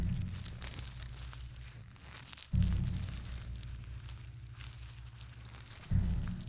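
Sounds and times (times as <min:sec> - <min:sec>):
person walking through dry leaves: 0:00.0 - 0:06.4.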